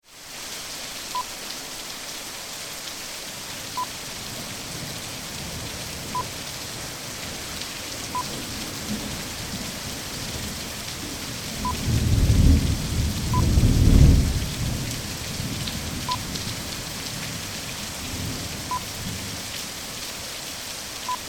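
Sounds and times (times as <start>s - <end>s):
heavy rain: 0.0s - 21.2s
thunder: 11.6s - 14.9s.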